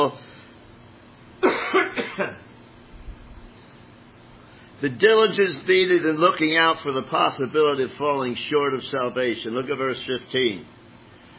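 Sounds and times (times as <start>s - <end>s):
speech: 0.0s - 0.3s, 1.7s - 2.5s, 4.8s - 10.8s
person coughing during a sermon: 1.4s - 2.5s.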